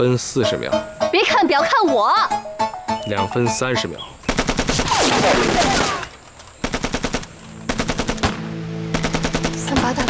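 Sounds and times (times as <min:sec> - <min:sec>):
speech: 0:00.0 - 0:04.2, 0:05.0 - 0:06.0
Taisho Type 11 light machine gun firing: 0:04.3 - 0:10.0.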